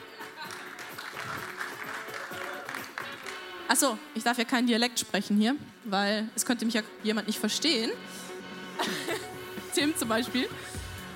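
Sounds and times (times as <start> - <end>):
large audience applause: 0.1 - 3.5
speech: 3.7 - 8.2, 9.8 - 10.8
laughter: 8.8 - 9.4.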